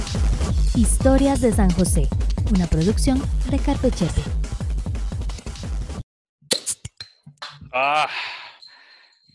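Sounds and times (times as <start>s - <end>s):
music: 0.0s - 6.0s
speech: 0.8s - 4.4s, 7.8s - 8.3s
beer bottle cap popping off: 6.5s - 7.6s.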